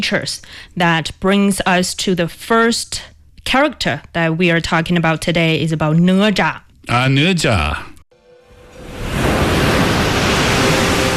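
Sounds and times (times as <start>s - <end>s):
speech: 0.0s - 7.9s
ocean waves surging: 8.4s - 11.1s.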